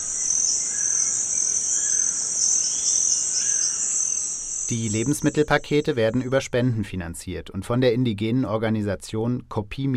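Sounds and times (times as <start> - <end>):
faint rainforest bird calls: 0.0 - 6.3
rainforest insects droning: 0.0 - 6.8
speech: 4.7 - 9.9.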